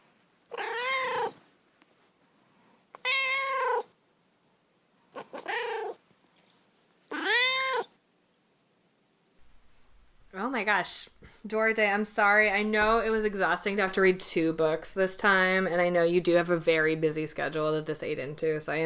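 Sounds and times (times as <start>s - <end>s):
cat meowing: 0.5s - 1.4s, 3.0s - 3.9s, 5.2s - 6.0s, 7.1s - 7.9s
speech: 10.6s - 18.8s.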